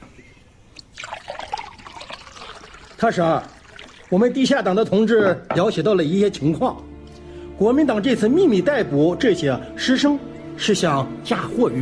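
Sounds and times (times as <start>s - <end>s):
water poured into a cup or vessel: 0.8s - 5.0s
speech: 3.0s - 6.8s, 7.6s - 11.8s.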